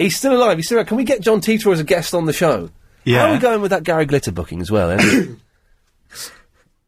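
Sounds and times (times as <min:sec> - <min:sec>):
speech: 0:00.0 - 0:05.4, 0:06.1 - 0:06.4
stifled sneeze or cough: 0:05.0 - 0:05.4.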